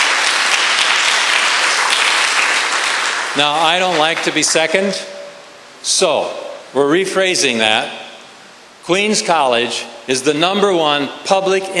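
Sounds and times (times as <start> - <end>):
large crowd applauding at a college: 0.0 - 4.6
speech: 3.4 - 5.1, 5.8 - 8.0, 8.8 - 11.7.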